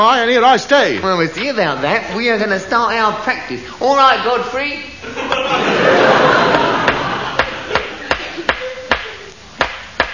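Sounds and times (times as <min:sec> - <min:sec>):
speech: 0:00.0 - 0:05.7
faint noise: 0:00.0 - 0:10.1
laughter: 0:05.0 - 0:09.4
cricket stumps hammered into ground of a potato patch: 0:09.6 - 0:10.1.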